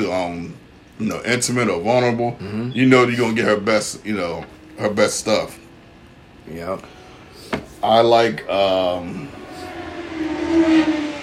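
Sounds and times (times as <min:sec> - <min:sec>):
speech: 0:00.1 - 0:05.6, 0:06.4 - 0:07.0, 0:07.8 - 0:09.4
motorcycle passing outside with steady engine drone: 0:08.5 - 0:11.2.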